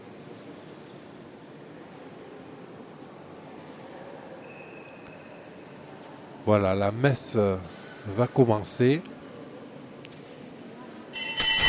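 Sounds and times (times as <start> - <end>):
speech: 6.5 - 9.1
church bell ringing: 11.2 - 11.6.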